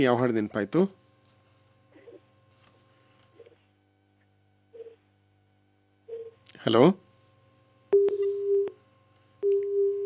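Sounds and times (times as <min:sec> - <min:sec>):
speech: 0:00.0 - 0:01.0, 0:06.6 - 0:07.0
faint low buzzing hum: 0:00.0 - 0:10.0
telephone line tone after a call is cut off: 0:07.9 - 0:08.8, 0:09.4 - 0:10.0.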